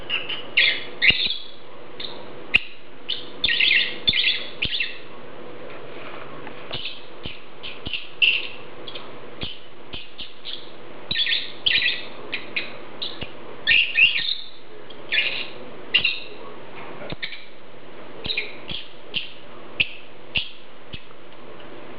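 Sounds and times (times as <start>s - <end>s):
Agapornis lovebird chirps: 0.1s - 5.1s, 6.7s - 16.3s.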